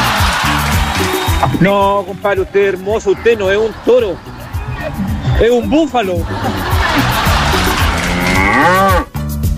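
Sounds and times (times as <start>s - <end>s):
laughter: 0.0s - 1.2s, 2.0s - 8.9s
speech: 1.6s - 7.1s, 8.6s - 9.1s
cow mooing: 7.8s - 9.2s.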